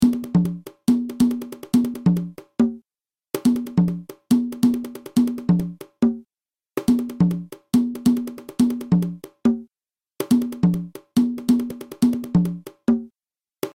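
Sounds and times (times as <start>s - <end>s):
guarapachangueo rhythm on cajon: 0.0s - 2.8s, 3.4s - 6.2s, 6.8s - 13.1s.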